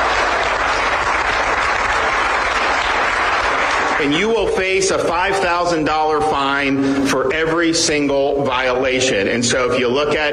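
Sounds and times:
crowd cheering and applauding: 0.0 - 4.8
speech: 4.0 - 10.3.

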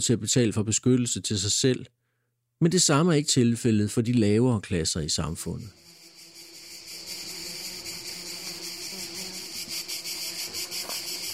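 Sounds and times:
speech: 0.0 - 2.0, 2.6 - 5.9
cicadas buzzing in the mountains: 5.6 - 11.3.

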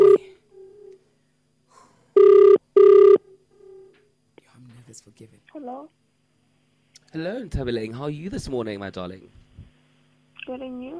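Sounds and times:
ringback tones of an outgoing phone call: 0.0 - 0.3, 2.2 - 3.2
speech: 4.9 - 6.1, 7.1 - 9.4.

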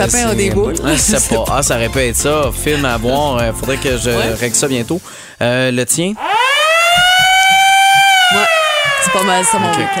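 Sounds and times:
laughter: 0.0 - 4.5
low rhythmic thumps: 0.0 - 5.1, 6.5 - 9.9
speech: 0.0 - 6.4, 8.3 - 9.9
fire truck siren: 6.2 - 9.9.

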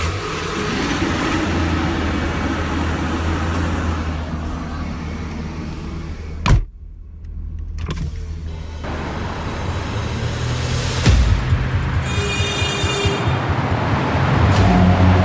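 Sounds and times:
truck engine starting and idling in the suburbs of Washington, D.C.: 0.0 - 15.2
car door thudding shut: 6.4 - 6.7.

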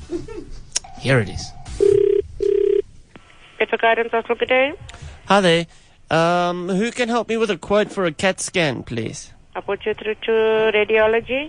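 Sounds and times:
speech: 1.0 - 1.9, 3.6 - 11.4
telephone ringing tone on a call to a hospital: 1.7 - 2.9.

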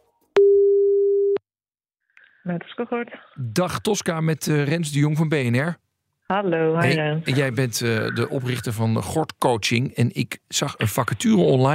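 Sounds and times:
low-pitched telephone tone while placing a call: 0.4 - 1.4
speech: 2.4 - 11.7.

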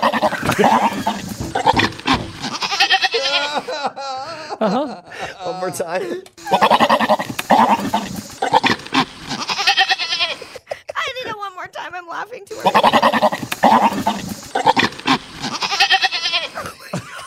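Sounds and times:
goat bleating: 0.0 - 3.6, 6.4 - 10.5, 12.6 - 16.7
laughter: 0.0 - 8.0, 16.3 - 17.2
speech: 0.6 - 1.1, 4.6 - 8.3.

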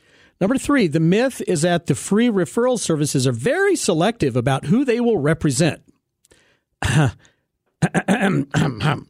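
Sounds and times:
speech: 0.4 - 5.9, 6.8 - 9.0
throat clearing: 6.8 - 9.0.

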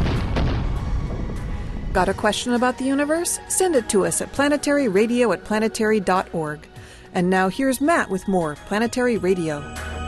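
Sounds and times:
aircraft sonic boom: 0.0 - 2.6
speech: 2.0 - 9.9.

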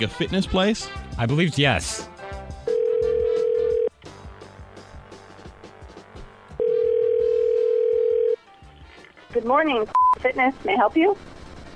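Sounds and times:
speech: 0.0 - 2.1, 9.4 - 11.3
telephone dial tone as a call is placed to a fitness gym: 2.7 - 3.9, 6.6 - 8.4.

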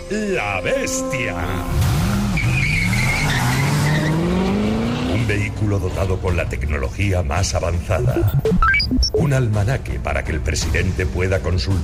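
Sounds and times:
speech: 0.1 - 1.9, 5.3 - 11.8
car tires skidding and squealing on asphalt in Madrid: 1.8 - 6.2.

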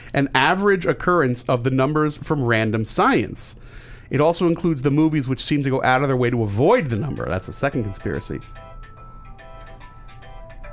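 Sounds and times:
low hum: 0.0 - 10.7
speech: 0.1 - 8.7
mobile phone ringtone with bright repeating electronic melody: 6.9 - 10.7.

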